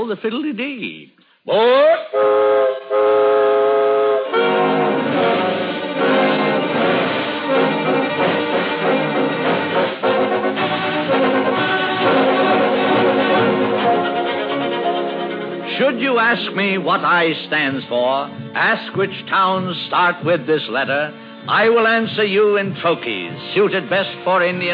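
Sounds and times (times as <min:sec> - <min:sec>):
speech: 0:00.0 - 0:03.0, 0:16.0 - 0:24.7
loud steam train whistle: 0:01.8 - 0:15.6.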